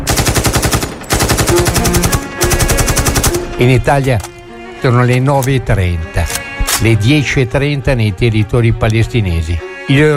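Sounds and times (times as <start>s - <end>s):
automatic gunfire from an AK-47 Kalashnikov rifle in the Palestinian territories: 0.1s - 3.5s
speech: 3.6s - 10.1s.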